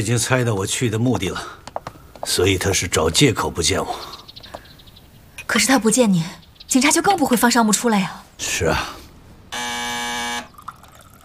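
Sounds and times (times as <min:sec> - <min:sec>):
speech: 0:00.0 - 0:04.2, 0:05.5 - 0:09.0
electric doorbell buzzing: 0:09.5 - 0:10.6.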